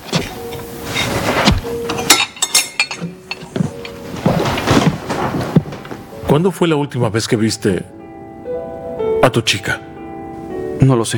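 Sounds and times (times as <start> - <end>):
dishes clinking and clattering as plates are gathered up: 0.0 - 6.0
speech: 6.3 - 8.0, 9.3 - 9.9, 10.8 - 11.1.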